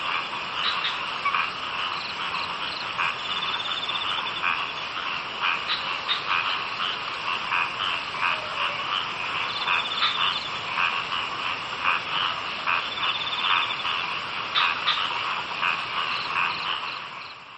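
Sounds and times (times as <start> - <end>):
frogs calling in a dense chorus of clicking croaks and pulsed trills: 0.0 - 17.5.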